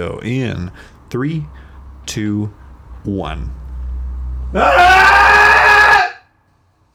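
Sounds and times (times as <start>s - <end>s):
speech: 0.0s - 3.6s, 4.5s - 5.3s
several people screaming together in a cathartic cry: 4.5s - 6.2s.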